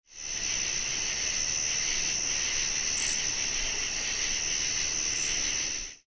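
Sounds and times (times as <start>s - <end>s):
Oblong-winged Katydid calling: 0.2s - 5.8s.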